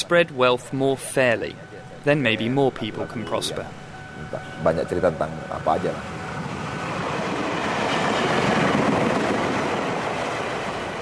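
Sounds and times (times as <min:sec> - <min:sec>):
speech: 0:00.0 - 0:06.2
train rumbling past at a station: 0:00.0 - 0:11.0.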